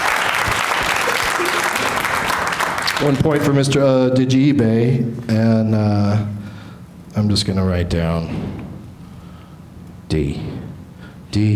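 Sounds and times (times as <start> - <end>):
applause during a points round of a game: 0.0 - 3.5
speech: 3.0 - 6.4, 7.2 - 8.6, 10.1 - 10.6, 11.3 - 11.5.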